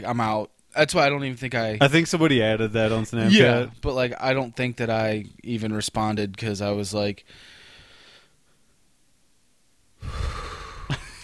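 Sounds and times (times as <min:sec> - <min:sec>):
speech: 0:00.0 - 0:07.6
person exhaling heavily with a gasp-like catch: 0:10.0 - 0:11.0.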